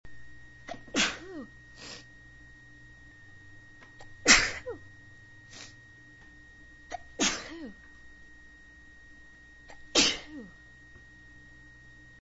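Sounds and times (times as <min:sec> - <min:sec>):
woman sneezing: 0:00.7 - 0:01.5, 0:04.3 - 0:04.8, 0:06.9 - 0:07.8, 0:09.9 - 0:10.5.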